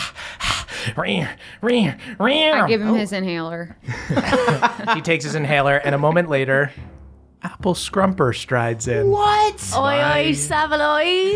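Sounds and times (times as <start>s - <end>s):
voice imitating panting: 0.0s - 2.8s
speech: 0.9s - 6.9s, 7.6s - 11.3s
laughter: 3.8s - 6.6s.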